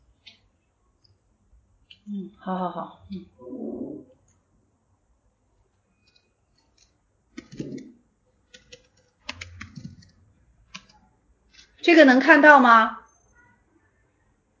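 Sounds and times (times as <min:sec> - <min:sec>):
speech: 0:02.1 - 0:03.9, 0:11.9 - 0:13.0
typing on a computer keyboard: 0:06.0 - 0:11.8.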